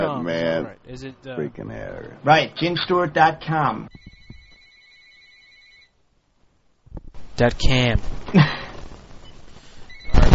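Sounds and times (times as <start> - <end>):
speech: 0.0 - 4.1, 7.4 - 8.6
electronic phone ringing with two high tones: 3.9 - 5.9.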